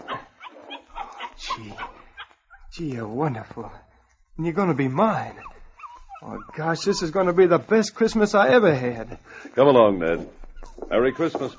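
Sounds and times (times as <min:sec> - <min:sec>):
puppy barking in high short yips: 0:00.0 - 0:02.7, 0:05.2 - 0:07.5, 0:10.1 - 0:11.5
speech: 0:02.8 - 0:05.5, 0:06.2 - 0:11.5.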